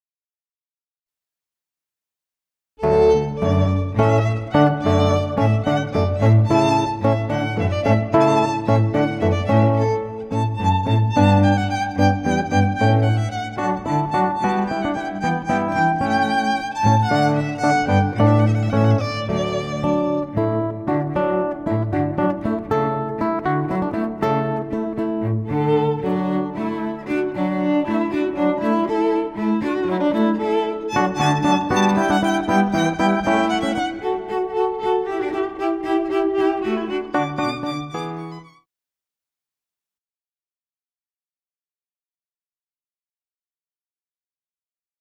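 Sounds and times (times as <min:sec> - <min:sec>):
cello: 0:02.8 - 0:38.5
violin: 0:02.8 - 0:38.6
guitar: 0:02.9 - 0:34.1.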